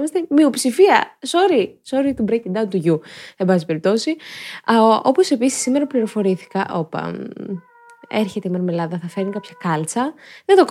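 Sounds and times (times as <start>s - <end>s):
speech: 0.0s - 10.6s
cat meowing: 5.5s - 10.6s.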